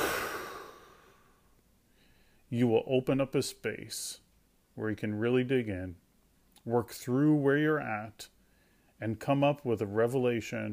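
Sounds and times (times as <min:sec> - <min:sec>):
person taking deep breaths in and out: 0:00.0 - 0:02.5, 0:08.4 - 0:09.0
speech: 0:02.5 - 0:04.2, 0:04.8 - 0:06.0, 0:06.6 - 0:08.3, 0:09.0 - 0:10.7.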